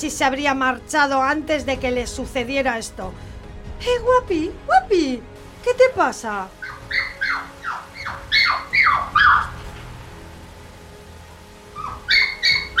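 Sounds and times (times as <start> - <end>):
speech: 0.0 - 7.1
castle's dogs barking furiously: 6.6 - 9.8, 11.7 - 12.7.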